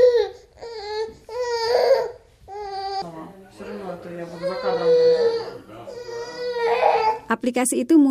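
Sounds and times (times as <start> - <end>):
infant girl crying and sobbing: 0.0 - 3.1, 4.1 - 7.3
speech: 7.3 - 8.0.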